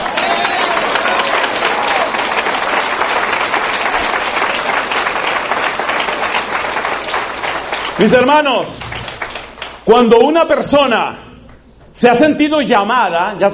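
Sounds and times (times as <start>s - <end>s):
crowd clapping: 0.0s - 10.2s
speech: 8.0s - 8.8s, 9.9s - 11.2s, 12.0s - 13.5s.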